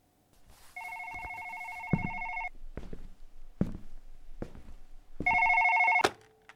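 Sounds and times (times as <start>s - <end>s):
landline telephone ringing with electronic trill: 0.8s - 2.5s, 5.2s - 6.0s.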